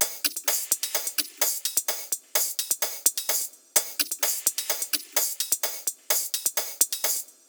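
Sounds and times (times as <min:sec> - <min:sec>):
percussion loop: 0:00.0 - 0:07.4.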